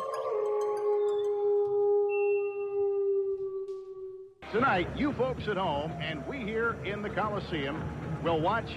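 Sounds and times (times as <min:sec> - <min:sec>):
wolf howling: 0:00.0 - 0:04.4
speech: 0:04.5 - 0:08.7.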